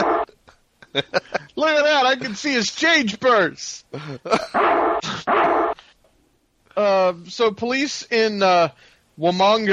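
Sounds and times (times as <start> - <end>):
agitated dog barking while someone puts pants on it: 0.0 - 0.2, 4.6 - 5.8
speech: 0.9 - 5.7, 6.8 - 9.7.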